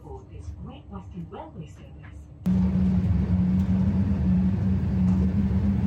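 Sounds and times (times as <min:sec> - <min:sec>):
steady low rumble in a busy train station: 0:02.5 - 0:05.8.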